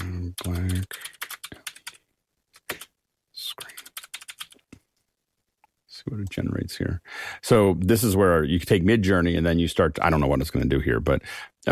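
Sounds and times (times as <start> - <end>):
typing on a computer keyboard: 0.4 - 2.0, 3.6 - 4.6
speech: 6.1 - 11.7.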